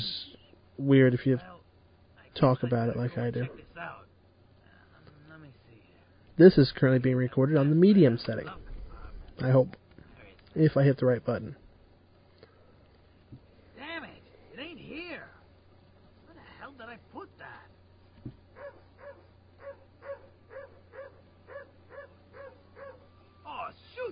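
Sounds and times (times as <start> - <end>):
speech: 0.8 - 1.6, 2.4 - 4.0, 6.4 - 8.6, 9.4 - 9.8, 10.6 - 11.6
pack of dogs barking outdoors: 2.8 - 3.7, 18.5 - 23.2.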